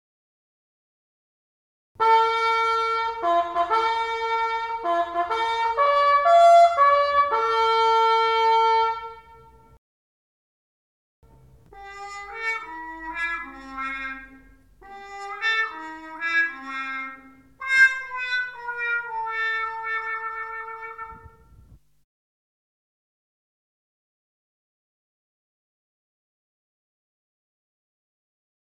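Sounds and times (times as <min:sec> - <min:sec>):
muted trumpet: 0:02.0 - 0:09.8, 0:11.3 - 0:21.8.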